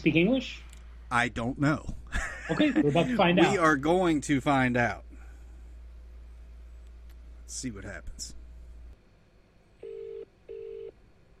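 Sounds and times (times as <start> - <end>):
speech: 0.0 - 5.1, 7.5 - 8.4
laughter: 2.1 - 3.6
phone ringback tone calling a paranormal helpline: 9.8 - 10.9.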